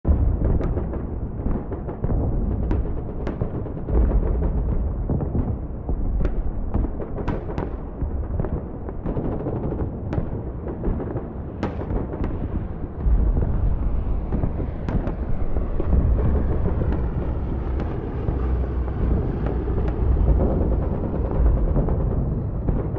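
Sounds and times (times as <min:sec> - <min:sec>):
distant WW2 battle: 0:00.1 - 0:22.9.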